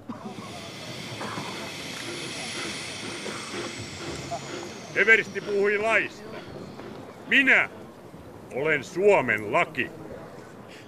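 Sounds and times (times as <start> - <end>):
steam train hissing at a station: 0.0 - 7.8
faint murmuring voices: 0.0 - 10.8
speech: 5.0 - 6.3, 7.3 - 7.8, 8.5 - 10.0.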